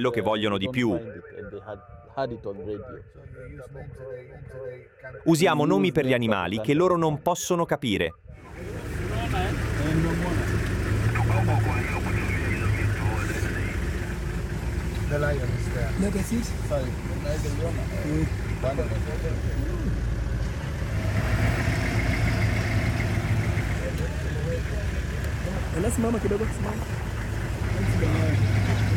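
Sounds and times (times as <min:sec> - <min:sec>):
speech: 0:00.0 - 0:10.4, 0:15.1 - 0:19.8, 0:25.8 - 0:27.1
line of stopped car engines idling: 0:08.4 - 0:28.9.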